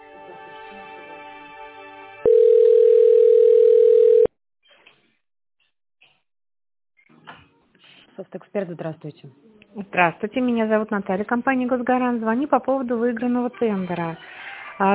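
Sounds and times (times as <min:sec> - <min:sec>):
buzzing multi-toned telephone hum while a call is transferred: 0:02.3 - 0:04.3
speech: 0:08.3 - 0:14.9.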